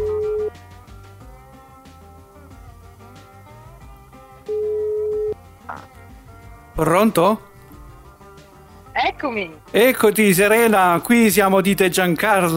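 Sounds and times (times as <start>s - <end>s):
telephone ringing with electronic tone: 0.0s - 0.5s, 4.5s - 5.4s
music: 0.0s - 12.5s
speech: 6.8s - 7.5s, 9.2s - 12.5s.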